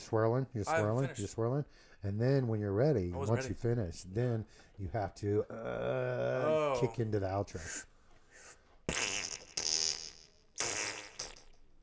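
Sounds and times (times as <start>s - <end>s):
speech: 0.1s - 7.9s, 8.9s - 9.2s
voice imitating farting sounds with buzzy raspberry-like bursts: 8.9s - 11.8s.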